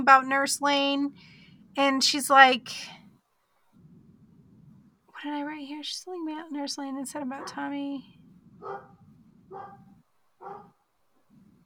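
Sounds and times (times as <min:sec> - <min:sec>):
speech: 0:00.0 - 0:03.0, 0:05.2 - 0:08.9
low rumbling background: 0:00.0 - 0:11.6
dogs barking: 0:08.5 - 0:11.4.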